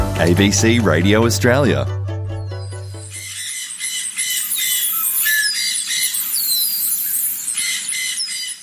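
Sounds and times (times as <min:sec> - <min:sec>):
speech: 0:00.2 - 0:02.0
dense chorus of tropical birds squawking and screeching: 0:02.7 - 0:08.6.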